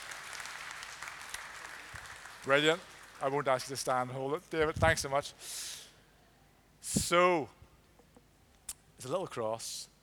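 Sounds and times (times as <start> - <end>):
audience clapping in a church: 0.0 - 3.7
speech: 2.4 - 5.8, 6.8 - 7.6, 9.0 - 9.9.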